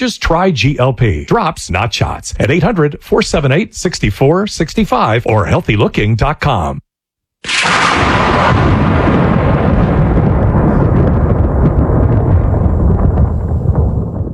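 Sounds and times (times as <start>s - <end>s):
speech: 0.0s - 6.8s
thunderclap rolling into a long heavy rumble: 7.5s - 14.3s.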